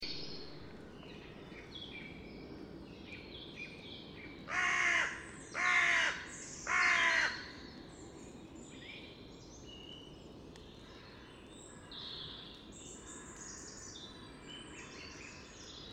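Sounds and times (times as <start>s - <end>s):
other birds twittering: 0.0s - 15.9s
carrion crow Corvus corone giving hoarse caws: 4.5s - 7.5s.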